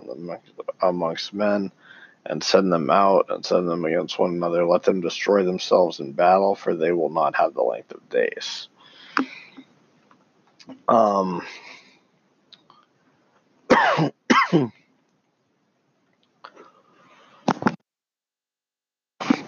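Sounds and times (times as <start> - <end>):
speech: 0.3 - 9.4, 10.7 - 11.6, 13.8 - 14.8
harsh coughing: 13.7 - 14.8.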